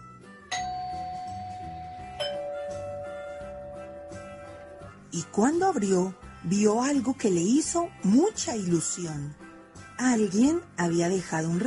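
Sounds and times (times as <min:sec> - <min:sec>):
doorbell two-note ding-dong: 0:00.5 - 0:04.9
speech: 0:05.2 - 0:09.4, 0:10.0 - 0:11.6.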